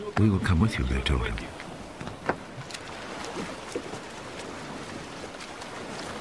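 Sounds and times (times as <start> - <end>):
soft splashes of rowing boat at night: 0.0 - 6.1
speech: 0.1 - 1.6
knocks of rowing boat: 2.0 - 2.4.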